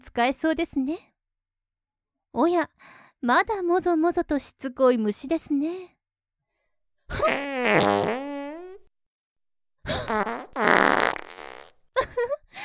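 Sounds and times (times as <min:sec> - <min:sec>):
speech: 0:00.0 - 0:01.1, 0:02.3 - 0:06.0, 0:07.1 - 0:08.2, 0:09.9 - 0:11.1
farts: 0:07.2 - 0:08.9, 0:10.0 - 0:11.8.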